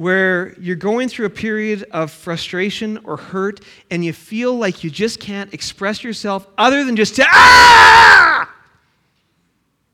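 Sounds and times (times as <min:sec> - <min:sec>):
speech: 0:00.0 - 0:08.4
man yelling into a microphone: 0:06.6 - 0:08.6.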